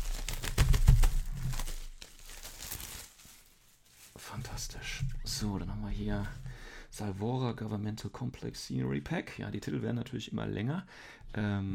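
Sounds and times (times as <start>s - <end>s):
thick shrink-wrapped plastic foil packaging being torn open: 0.0s - 4.2s
speech: 4.6s - 6.4s, 7.0s - 11.7s.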